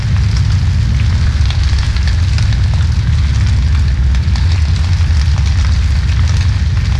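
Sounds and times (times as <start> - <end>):
large fire: 0.0 - 6.9.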